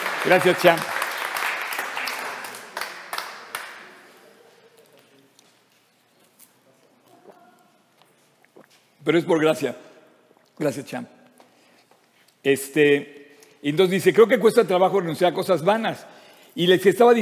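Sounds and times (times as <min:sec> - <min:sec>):
audience applause: 0:00.0 - 0:04.2
speech: 0:00.2 - 0:00.9, 0:09.0 - 0:09.9, 0:10.6 - 0:11.2, 0:12.4 - 0:17.2.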